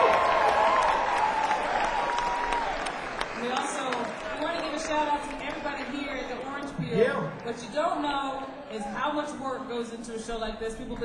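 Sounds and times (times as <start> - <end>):
faint cheering: 0.0 - 3.2
crowd applauding: 0.0 - 9.0
speech: 7.5 - 11.0.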